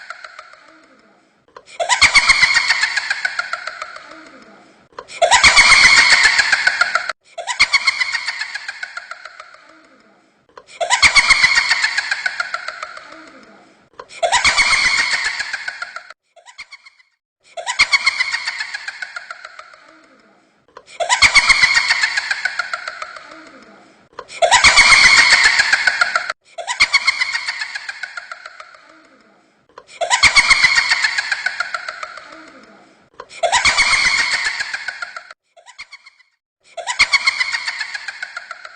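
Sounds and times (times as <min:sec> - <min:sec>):
scary ghost laugh with raspy cackle: 0:00.0 - 0:01.1, 0:01.7 - 0:10.1, 0:10.8 - 0:13.6, 0:14.2 - 0:20.2, 0:21.0 - 0:29.2, 0:30.0 - 0:32.8, 0:33.4 - 0:38.7.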